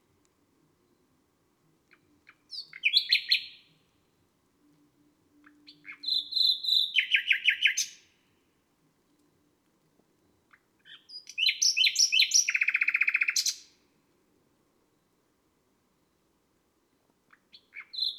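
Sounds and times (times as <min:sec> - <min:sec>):
nightingale singing on a May night: 0:01.9 - 0:03.9, 0:04.6 - 0:08.3, 0:10.2 - 0:13.8, 0:16.0 - 0:18.1.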